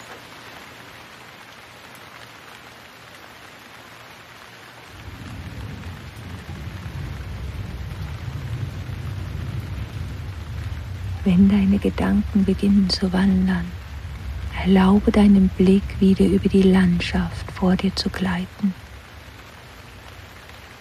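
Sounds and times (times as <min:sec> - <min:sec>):
steady rain hissing: 0:00.0 - 0:20.7
deep rolling rumble of thunder: 0:04.9 - 0:20.7
speech: 0:11.2 - 0:13.8, 0:14.6 - 0:18.8.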